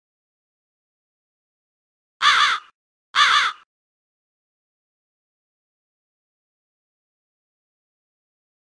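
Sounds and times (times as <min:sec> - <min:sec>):
crow giving harsh hoarse caws in a cave: 0:02.2 - 0:03.7.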